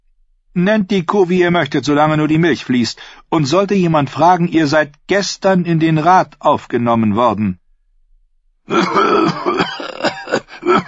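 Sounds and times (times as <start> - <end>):
speech: 0.6 - 7.6, 8.7 - 10.8
ill man coughing up blood in a coughing fit as he collapses: 8.7 - 10.8
man groaning: 8.7 - 10.8.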